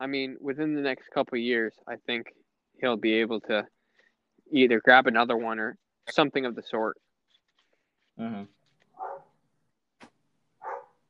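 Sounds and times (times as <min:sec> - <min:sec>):
speech: 0:00.0 - 0:03.8, 0:04.5 - 0:07.0, 0:08.2 - 0:08.6
dog barking: 0:09.0 - 0:09.3, 0:10.6 - 0:11.0.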